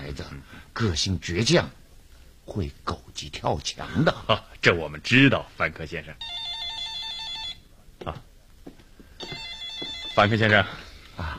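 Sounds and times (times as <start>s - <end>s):
speech: 0.2s - 1.8s, 2.5s - 6.4s, 8.0s - 8.3s, 10.2s - 11.3s
telephone ringing with an electronic trilling tone: 6.2s - 7.7s, 9.2s - 10.8s.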